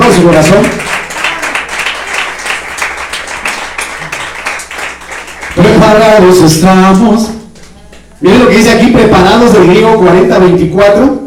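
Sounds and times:
audience applauding in praise: 0:00.0 - 0:06.2
speech: 0:00.2 - 0:01.0, 0:05.6 - 0:07.4, 0:08.2 - 0:11.2.

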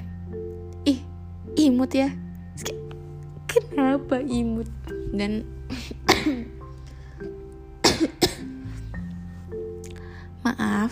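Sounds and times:
faint steady hum: 0:00.0 - 0:10.9
speech: 0:00.9 - 0:02.8, 0:03.6 - 0:06.5, 0:10.6 - 0:10.9
person coughing: 0:06.0 - 0:06.6, 0:07.8 - 0:08.6.

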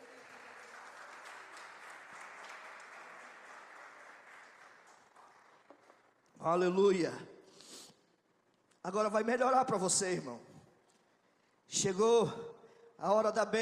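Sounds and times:
crowd applauding: 0:00.0 - 0:06.2
speech: 0:06.4 - 0:07.3, 0:08.8 - 0:10.5, 0:11.7 - 0:13.5.

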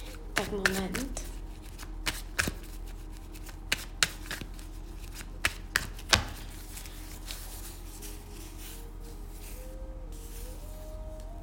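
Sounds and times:
tarot cards being shuffled: 0:00.0 - 0:11.3
speech: 0:00.5 - 0:01.2.

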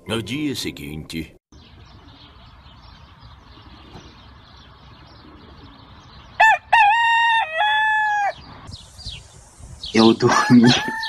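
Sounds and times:
speech: 0:00.1 - 0:01.4, 0:10.2 - 0:11.0
rooster crowing: 0:06.4 - 0:08.4, 0:10.3 - 0:11.0.

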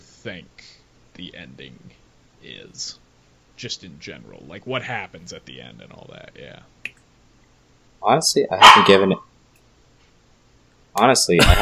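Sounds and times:
speech: 0:00.2 - 0:03.0, 0:03.6 - 0:07.0, 0:08.0 - 0:09.3, 0:11.0 - 0:11.5
dog barking: 0:08.6 - 0:09.2.

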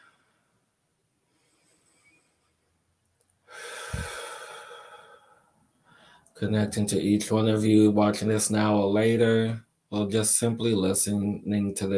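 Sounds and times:
deep breath: 0:01.3 - 0:02.5, 0:03.5 - 0:06.4
speech: 0:06.4 - 0:11.9.

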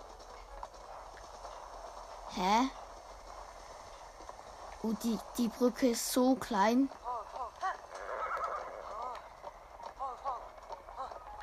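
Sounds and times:
horse hooves clip-clopping: 0:00.0 - 0:11.4
speech: 0:02.4 - 0:02.8, 0:04.8 - 0:07.0
horse whinnying: 0:07.1 - 0:09.4.

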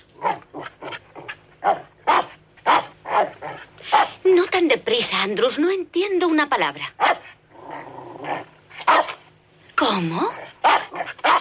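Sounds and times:
small dog growling: 0:00.2 - 0:02.2, 0:02.8 - 0:04.1, 0:07.2 - 0:09.0, 0:10.2 - 0:11.4
small dog barking: 0:01.6 - 0:04.2, 0:07.0 - 0:07.3, 0:08.8 - 0:09.2, 0:10.6 - 0:11.4
speech: 0:05.2 - 0:07.2, 0:10.0 - 0:10.4.

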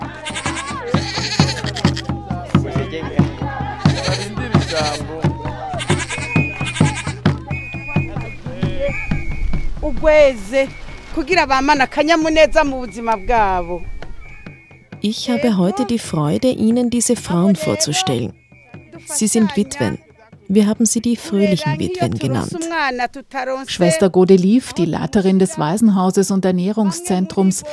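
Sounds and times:
goats bleating outdoors on a field: 0:00.0 - 0:07.4
people's voices murmuring: 0:00.0 - 0:27.7
speech: 0:10.0 - 0:13.9, 0:15.0 - 0:18.4, 0:19.1 - 0:27.7.

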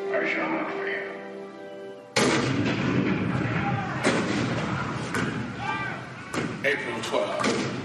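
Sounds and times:
speech: 0:00.2 - 0:01.0, 0:06.7 - 0:07.8
cannon blasts at Fort Sumter: 0:02.2 - 0:05.4.

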